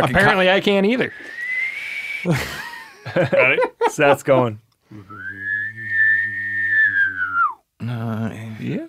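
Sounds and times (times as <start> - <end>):
speech: 0.0 - 1.4, 2.2 - 5.2, 7.8 - 8.8
person whistling in imitation of a bird call: 1.2 - 2.3, 5.1 - 7.6
people laughing briefly: 2.3 - 4.5.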